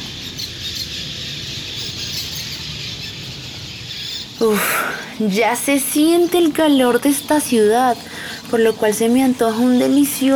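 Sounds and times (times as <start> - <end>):
large flock of parakeets and swallows chattering: 0.0 - 10.3
speech: 4.4 - 10.3.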